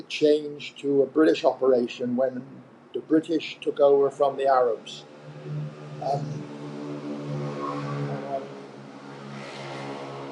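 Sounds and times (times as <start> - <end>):
cars streaming past on a highway: 0.0 - 10.3
speech: 0.1 - 6.5.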